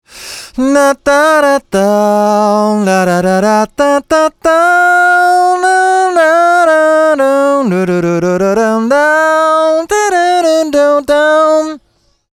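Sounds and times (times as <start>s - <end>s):
vocoder voice: 0.1s - 11.9s.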